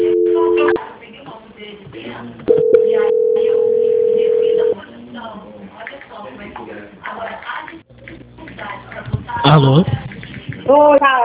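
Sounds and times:
telephone call-transfer tones over a phone line: 0.0s - 0.8s, 2.5s - 4.8s
speech: 9.5s - 10.0s.

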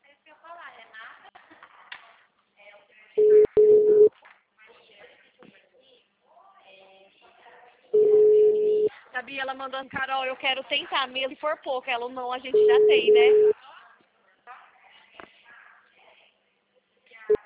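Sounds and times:
quiet talk: 0.0s - 11.8s, 12.8s - 17.4s
busy signal on a failing telephone call: 3.2s - 4.1s, 8.0s - 8.9s, 12.6s - 13.5s
speech: 9.4s - 13.5s.

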